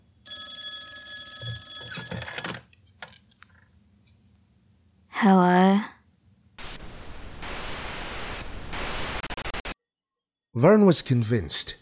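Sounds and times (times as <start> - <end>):
telephone ringing with a bright bell-like tone: 0.2 - 2.7
speech: 5.2 - 5.9, 10.6 - 11.8.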